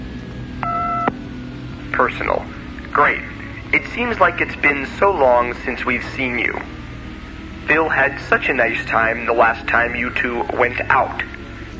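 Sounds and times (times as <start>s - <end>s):
low hum: 0.0s - 11.7s
touch-tone phone keypad dialing tone: 0.6s - 1.2s
speech: 2.0s - 6.8s, 7.7s - 11.4s.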